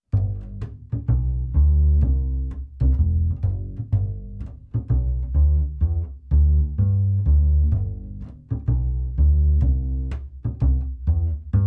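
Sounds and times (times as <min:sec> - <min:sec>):
upright bass recorded with FET microphone: 0:00.0 - 0:11.6.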